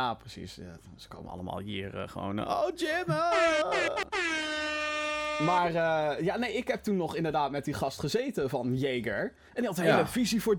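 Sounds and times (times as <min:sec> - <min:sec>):
speech: 0:00.0 - 0:04.8, 0:05.4 - 0:10.5
car horn honking outside: 0:03.3 - 0:05.7.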